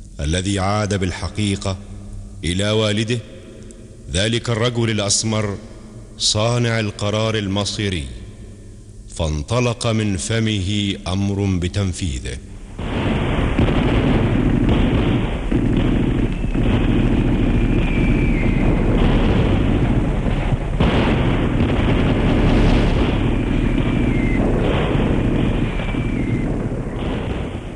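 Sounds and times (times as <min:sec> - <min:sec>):
speech: 0:00.2 - 0:03.3, 0:04.1 - 0:08.2, 0:09.2 - 0:12.9
explosions: 0:12.7 - 0:27.7
artillery fire: 0:12.8 - 0:27.7
high whistling tones sliding downward: 0:16.1 - 0:16.8, 0:17.4 - 0:19.0, 0:23.3 - 0:24.4, 0:25.6 - 0:27.1.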